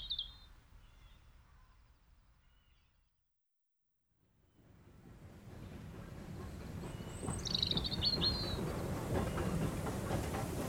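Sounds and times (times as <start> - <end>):
faint birdsong: 0.0 - 3.0, 5.3 - 10.2
steam train puffing down the track: 5.2 - 10.6.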